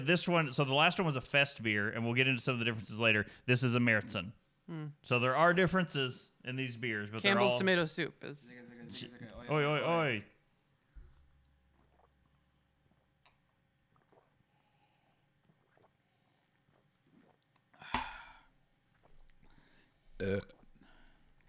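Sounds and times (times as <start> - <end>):
speech: 0.0 - 10.3, 20.2 - 20.6
burps: 11.6 - 14.5, 20.2 - 20.8.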